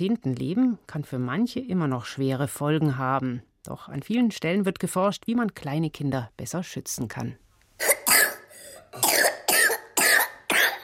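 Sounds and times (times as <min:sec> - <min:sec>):
speech: 0:00.0 - 0:07.9
child coughing in a rapid fit: 0:07.8 - 0:10.8.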